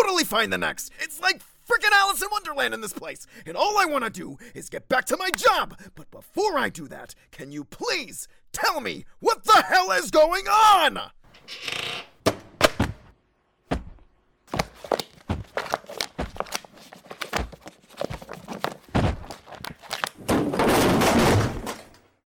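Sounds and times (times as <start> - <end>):
speech: 0.0 - 11.9
loud wooden thuds and clattering bangs of a falling shelf: 13.7 - 16.5, 17.3 - 22.2
shelf knocked over: 18.8 - 22.2
sustained crashing rumble as everything hits the floor: 20.2 - 22.1.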